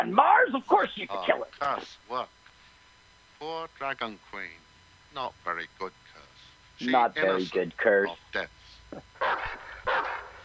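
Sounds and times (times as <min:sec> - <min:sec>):
speech: 0:00.0 - 0:02.4, 0:03.4 - 0:06.1, 0:06.8 - 0:09.6
dog barking: 0:09.2 - 0:10.4.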